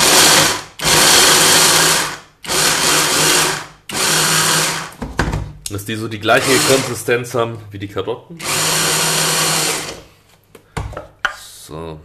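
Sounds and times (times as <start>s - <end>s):
stick blender chopping nuts: 0.0s - 5.1s, 6.3s - 7.1s, 8.4s - 10.1s
speech: 5.9s - 8.8s, 11.7s - 12.0s.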